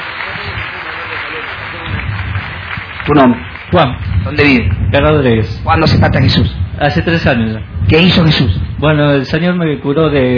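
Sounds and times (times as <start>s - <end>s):
cheering: 0.0s - 4.4s
crowd applause: 0.0s - 4.7s
speech: 3.1s - 10.3s.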